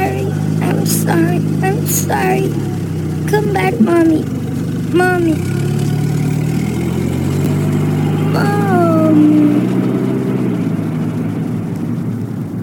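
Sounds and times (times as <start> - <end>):
person calling out: 0.0 - 4.3, 4.9 - 5.8, 8.3 - 9.6
Chevrolet car engine droning while driving: 0.0 - 12.6
speech: 1.1 - 5.8, 8.4 - 9.9.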